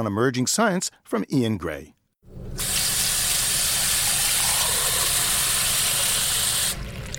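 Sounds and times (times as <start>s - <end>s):
speech: 0.0s - 2.0s
water pouring into a glass: 2.4s - 7.1s.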